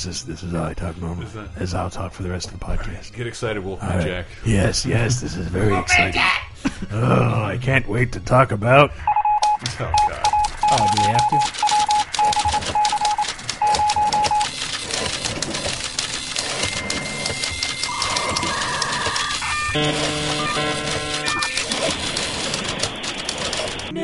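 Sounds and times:
speech: 0:00.0 - 0:11.7, 0:19.8 - 0:21.2
typewriter sound effect for news: 0:10.0 - 0:23.9.

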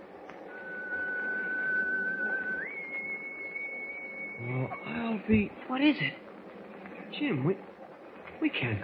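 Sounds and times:
ship's whistle blowing in fog: 0:00.5 - 0:05.3
speech: 0:04.4 - 0:06.2, 0:07.2 - 0:07.7, 0:08.4 - 0:08.8.

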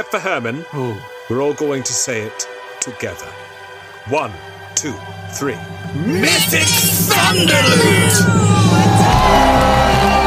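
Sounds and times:
speech: 0:00.0 - 0:09.8
crowd cheering and whooping: 0:05.9 - 0:10.2.

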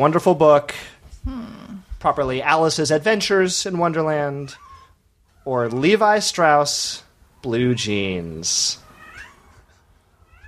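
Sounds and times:
speech: 0:00.0 - 0:01.4, 0:02.0 - 0:04.7, 0:05.4 - 0:08.8
cat meowing: 0:08.8 - 0:10.4.

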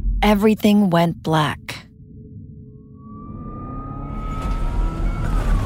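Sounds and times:
speech: 0:00.2 - 0:01.8
ambulance siren blaring: 0:03.0 - 0:05.6
heavy road rumble under a moving ambulance: 0:03.0 - 0:05.6.

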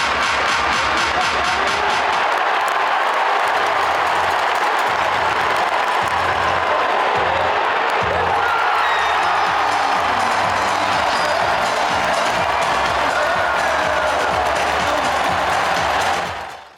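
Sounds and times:
huge arena crowd roaring and cheering at a basketball game: 0:00.0 - 0:16.7
arena crowd clapping: 0:00.1 - 0:08.0, 0:08.6 - 0:16.7
scattered whoops from arena crowd: 0:08.3 - 0:16.7.

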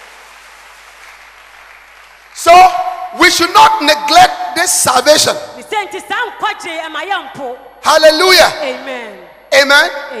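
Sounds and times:
church audience clapping: 0:00.0 - 0:02.6
speech: 0:03.2 - 0:10.1.

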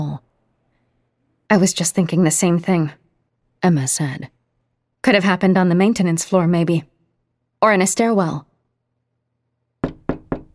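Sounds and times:
speech: 0:01.5 - 0:03.0, 0:03.6 - 0:04.4, 0:05.0 - 0:06.9, 0:07.6 - 0:08.5
firm knocking on an apartment door: 0:09.8 - 0:10.5.

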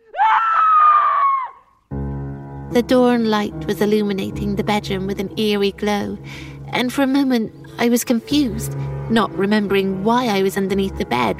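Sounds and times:
person screaming high-pitched: 0:00.0 - 0:01.6
speech: 0:02.7 - 0:11.3.

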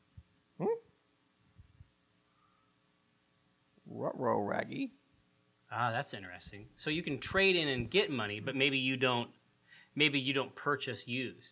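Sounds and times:
person imitating a confused dog's whine: 0:00.6 - 0:00.9
speech: 0:04.2 - 0:05.0, 0:05.7 - 0:09.4, 0:10.0 - 0:11.5.

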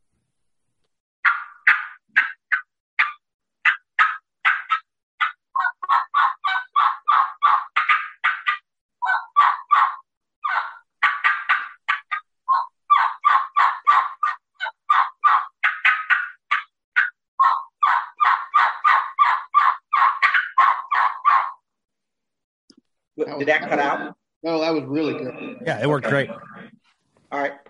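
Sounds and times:
turkey hunting call yelping to lure a gobbler: 0:01.2 - 0:21.7
speech: 0:23.3 - 0:26.5.

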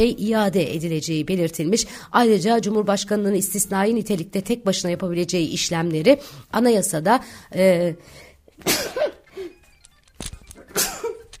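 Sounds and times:
speech: 0:00.0 - 0:09.0
person sneezing in the morning: 0:08.6 - 0:09.5, 0:10.7 - 0:11.3.

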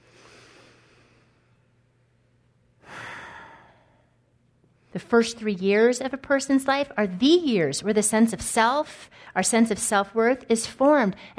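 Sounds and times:
slow deliberate human breathing: 0:00.0 - 0:01.7, 0:02.8 - 0:05.0, 0:09.0 - 0:09.4
speech: 0:04.9 - 0:11.3.

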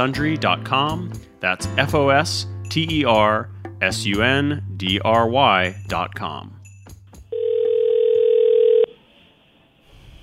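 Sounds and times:
speech: 0:00.0 - 0:06.6
telephone dial tone when dialing out: 0:07.3 - 0:08.9.

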